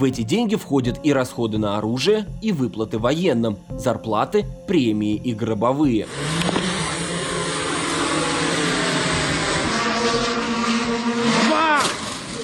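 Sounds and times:
speech: 0.0s - 6.5s
drone engine roar and whine during launch: 5.4s - 12.4s.

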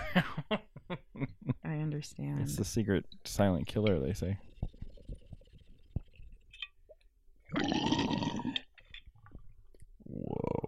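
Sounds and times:
speech: 0.2s - 0.7s, 2.0s - 4.5s
water pipe bubbling during a hit: 4.4s - 10.6s.

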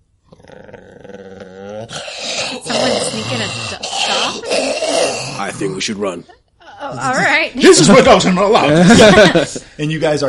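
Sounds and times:
deep rumbling gravelly growl: 0.3s - 5.8s
speech: 3.2s - 10.2s
laughter: 7.8s - 9.7s.

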